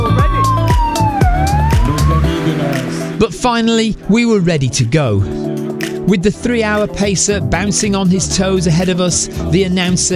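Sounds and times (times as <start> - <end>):
emergency sirens of emergency medical bikes driving through a running race: 0.0 - 3.2
speech: 3.3 - 5.4, 6.1 - 10.1.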